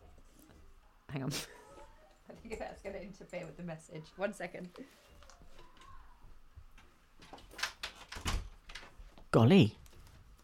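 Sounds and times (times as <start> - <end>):
speech: 1.1 - 1.6, 2.4 - 5.1, 9.3 - 9.8
quiet room rustling: 1.4 - 10.4
door being pushed shut: 7.4 - 8.9.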